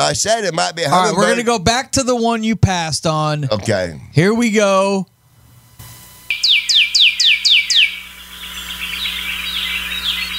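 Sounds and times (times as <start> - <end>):
speech: 0.0 - 5.1
grackle chirping: 6.3 - 10.3.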